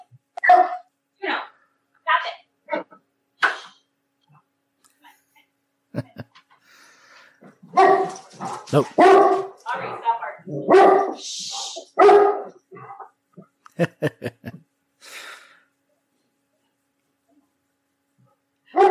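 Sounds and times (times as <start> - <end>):
dogs barking: 0.4 - 0.8, 7.7 - 10.0, 10.6 - 11.2, 12.0 - 13.1
laughter: 6.0 - 6.3, 13.7 - 14.6
speech: 8.7 - 9.9.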